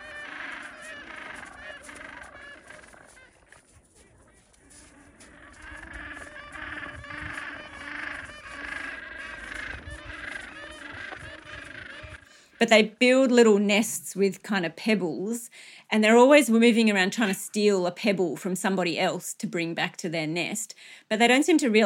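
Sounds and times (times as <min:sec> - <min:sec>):
many penguins squawking and braying: 0:00.0 - 0:12.7
speech: 0:12.6 - 0:21.8.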